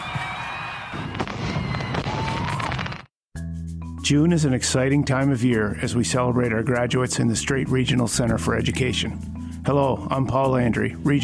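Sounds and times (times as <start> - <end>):
fireworks crackling and popping: 0.2 - 3.2
speech: 4.1 - 11.2.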